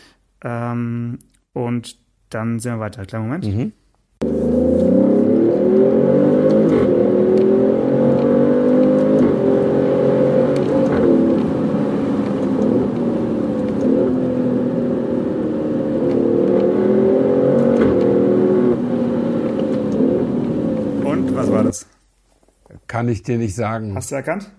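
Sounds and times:
speech: 0.4 - 7.5, 23.0 - 24.5
car engine revving on a mountain pass: 4.2 - 21.8.

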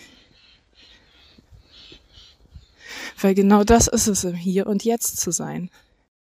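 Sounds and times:
birds cawing as they fly past: 0.0 - 3.2
speech: 3.2 - 5.9.

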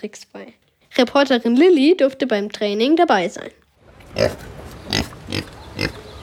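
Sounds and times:
speech: 0.0 - 3.6, 4.2 - 4.5
Kunekune pig grunting: 4.1 - 6.2.

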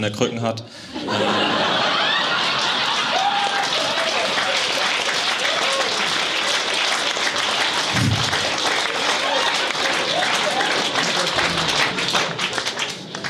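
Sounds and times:
speech: 0.0 - 1.6
laughter: 0.9 - 5.8, 7.8 - 12.6
audience member clapping hands: 3.8 - 13.2.

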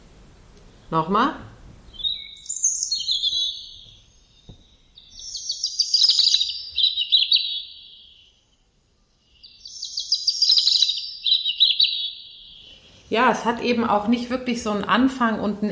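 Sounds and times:
speech: 0.9 - 1.5, 13.1 - 15.7
songbird warbling and trilling: 1.9 - 13.1.

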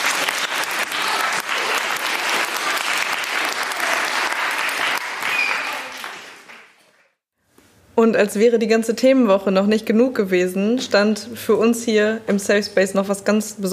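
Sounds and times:
audience applause: 0.0 - 7.2
speech: 8.0 - 13.7.

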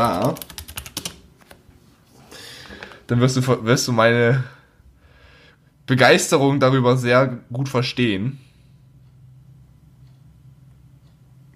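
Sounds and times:
speech: 0.0 - 0.5, 3.1 - 4.6, 5.9 - 8.5
computer keyboard typing a short chat message: 0.0 - 1.3.

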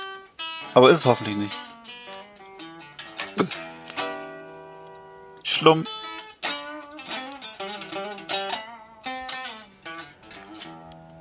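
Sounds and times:
blues guitar plucking: 0.0 - 11.2
speech: 0.6 - 1.8, 5.6 - 6.0.

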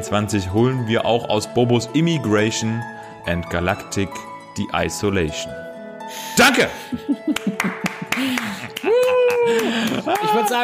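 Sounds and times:
speech: 0.0 - 8.5, 9.5 - 10.6
laughter: 6.8 - 10.6
hand claps: 7.3 - 10.6.

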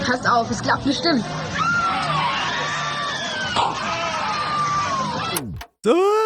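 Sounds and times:
speech: 0.1 - 2.1, 5.4 - 6.2
crowd of roller coaster riders screaming: 1.4 - 5.2.

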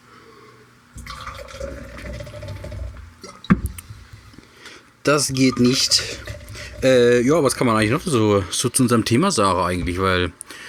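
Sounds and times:
water being poured into a glass: 1.0 - 4.4, 5.3 - 8.2
speech: 5.0 - 10.4.

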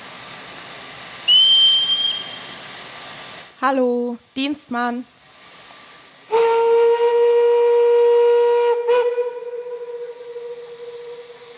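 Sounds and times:
hissing steam: 0.0 - 3.8, 4.4 - 11.5
steam train whistle at a railway station: 1.2 - 2.7, 6.3 - 11.5
speech: 3.6 - 5.2.

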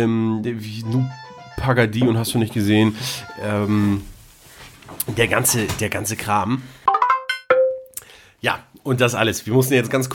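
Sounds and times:
speech: 0.0 - 4.1, 5.0 - 6.8, 8.4 - 10.1
telephone ringing with a bright bell-like electronic chime: 0.9 - 3.9.

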